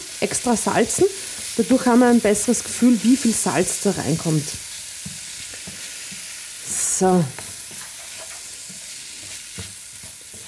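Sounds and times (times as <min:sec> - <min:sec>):
rice frying in a pan with a high sizzle: 0:00.0 - 0:10.4
speech: 0:00.2 - 0:04.7, 0:07.0 - 0:07.4
spoon or spatula stirring and scraping in a pan: 0:02.6 - 0:10.4.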